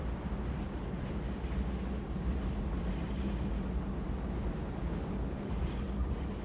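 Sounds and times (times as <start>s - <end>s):
wind: 0.0s - 6.4s.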